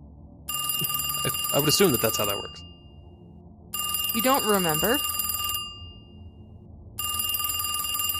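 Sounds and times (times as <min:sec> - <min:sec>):
old wall-mounted telephone ringing with a harsh bell: 0:00.5 - 0:02.7, 0:03.8 - 0:06.0, 0:07.0 - 0:08.1
speech: 0:01.2 - 0:02.7, 0:04.2 - 0:05.1.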